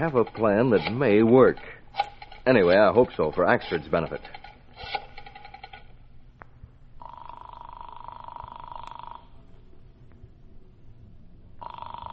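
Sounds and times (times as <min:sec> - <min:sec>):
speech: 0:00.0 - 0:05.0
steady electronic telephone ringing tone: 0:07.0 - 0:09.4, 0:11.6 - 0:12.1.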